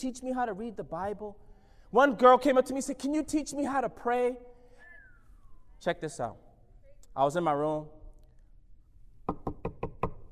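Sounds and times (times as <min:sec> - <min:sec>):
speech: 0:00.0 - 0:04.5, 0:05.8 - 0:06.4, 0:07.2 - 0:08.0
quick firm knocks on a door: 0:09.3 - 0:10.2.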